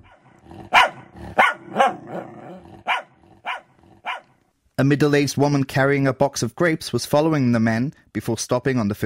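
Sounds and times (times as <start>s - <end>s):
dog barking: 0.0s - 4.4s
speech: 4.8s - 9.0s.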